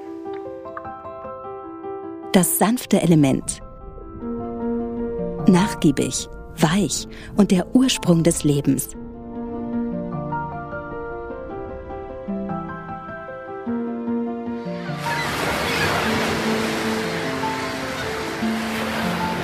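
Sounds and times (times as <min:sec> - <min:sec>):
gentle sustained music: 0:00.0 - 0:19.4
speech: 0:02.3 - 0:03.6, 0:05.5 - 0:09.0
ocean surf crashing: 0:14.7 - 0:19.4.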